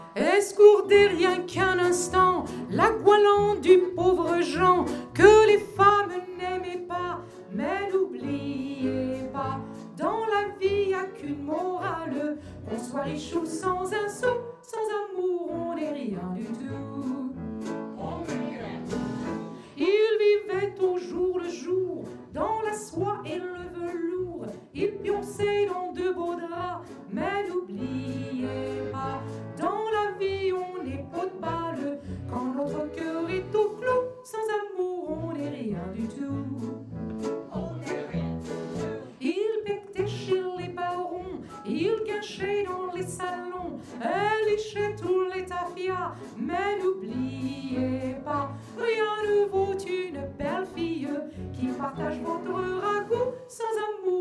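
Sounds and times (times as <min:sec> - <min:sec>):
tribute singer singing: 0:00.2 - 0:17.4, 0:18.0 - 0:54.2.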